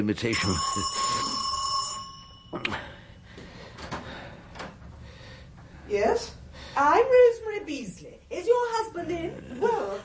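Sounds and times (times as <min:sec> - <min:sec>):
speech: 0:00.0 - 0:01.2, 0:02.5 - 0:03.0, 0:05.9 - 0:10.0
front doorbell ringing with an electric tone at night: 0:00.3 - 0:03.1
clunks and rustles: 0:03.4 - 0:05.0.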